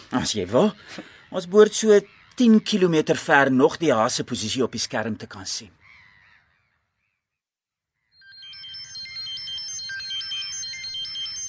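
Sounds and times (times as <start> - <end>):
speech: 0.1 - 5.8
phone ringtone playing a repeating electronic melody: 8.2 - 11.4.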